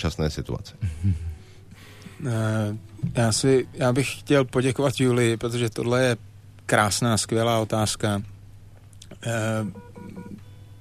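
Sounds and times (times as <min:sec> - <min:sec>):
speech: 0:00.0 - 0:01.3, 0:02.2 - 0:08.3, 0:09.2 - 0:10.2
electronic telephone ringing tone: 0:09.6 - 0:10.7.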